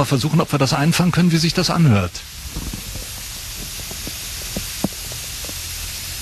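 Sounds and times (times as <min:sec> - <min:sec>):
speech: 0:00.0 - 0:02.8
trickling water hiss: 0:00.0 - 0:06.1.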